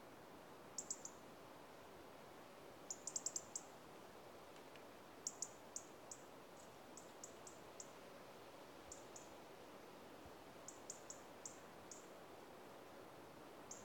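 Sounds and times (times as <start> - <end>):
faint background hiss: 0.0 - 13.8
European robin Erithacus rubecula call notes of sharp high ticks: 0.8 - 1.2, 2.9 - 3.7, 5.2 - 7.9, 8.9 - 9.3, 10.7 - 12.1, 13.7 - 13.8.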